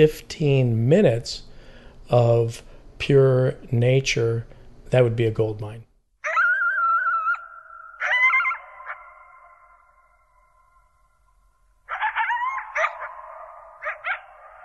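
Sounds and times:
speech: 0.0s - 1.5s, 2.1s - 5.9s
pack of coyotes howling and yipping: 6.2s - 11.0s, 11.9s - 14.6s.

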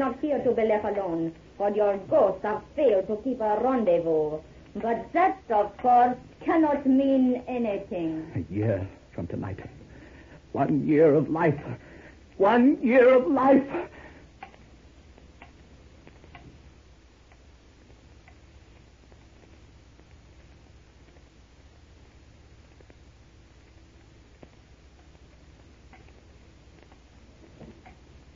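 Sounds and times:
clock ticking: 0.0s - 8.1s, 9.2s - 16.6s, 17.2s - 18.6s, 24.4s - 28.3s
speech: 0.0s - 9.8s, 10.6s - 14.0s
low hum: 0.0s - 28.3s.

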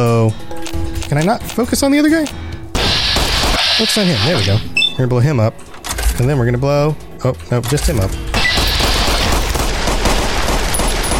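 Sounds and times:
speech: 1.1s - 2.5s, 3.8s - 8.2s
video game gunfire hitting the player: 2.7s - 4.6s, 8.3s - 11.1s.

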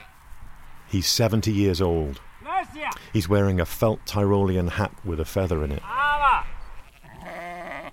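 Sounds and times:
rustle: 0.0s - 7.9s
speech: 0.9s - 6.0s
sheep bleating: 5.8s - 7.9s.

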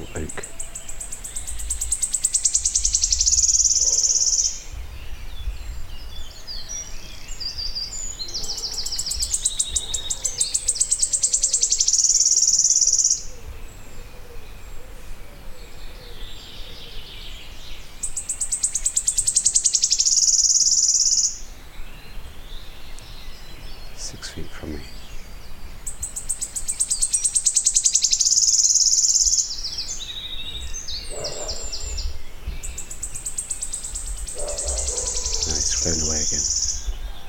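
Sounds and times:
quieter woodland bird calls: 0.0s - 5.2s, 6.3s - 37.2s
wood warbler high shivering trill from a very tall oak: 0.0s - 37.2s.

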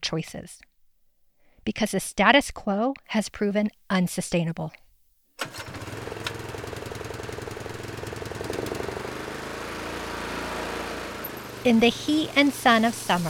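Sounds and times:
speech: 0.0s - 0.7s, 1.6s - 4.8s, 11.6s - 13.2s
gas lawn mower engine running: 5.4s - 13.2s.

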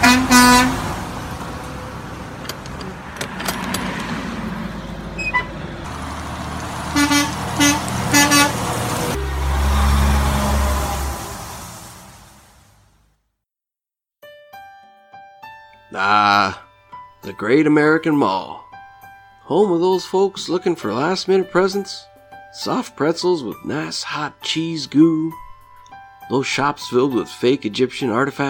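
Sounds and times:
truck horn tooting: 0.0s - 1.2s, 6.8s - 11.9s
truck engine rumbling: 0.0s - 13.0s
speech: 17.4s - 18.6s, 19.5s - 25.4s, 26.3s - 28.4s.

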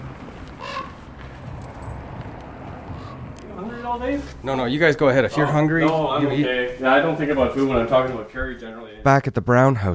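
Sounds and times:
hoarse raven call: 0.0s - 5.7s
steady outdoor hiss: 0.0s - 8.9s
speech: 3.9s - 9.9s.

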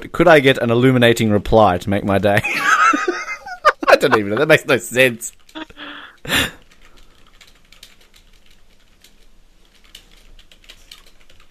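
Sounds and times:
speech: 0.1s - 2.9s, 4.0s - 5.4s
laughter: 2.4s - 4.7s
typing on a computer keyboard: 5.3s - 11.4s.

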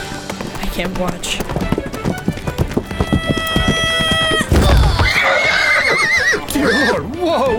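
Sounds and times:
man running in front of a ridden horse: 0.0s - 6.2s
clopping hoofbeats of a ridden horse: 0.0s - 7.5s
speech: 0.8s - 1.7s
horse giving a wavering whinny: 2.6s - 7.1s.

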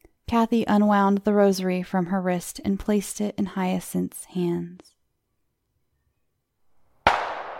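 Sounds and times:
speech: 0.3s - 5.0s
loud gunshot with ringing decay: 7.1s - 7.5s.

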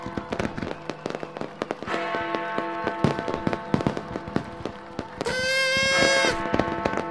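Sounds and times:
New Year fireworks crackling and banging: 0.0s - 7.0s
shrill whistling firework screech: 5.3s - 6.4s.

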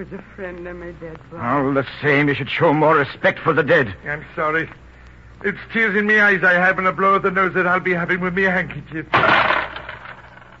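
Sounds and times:
speech: 0.0s - 4.8s, 5.4s - 9.5s
coins dropping on a hard floor: 9.2s - 10.5s.

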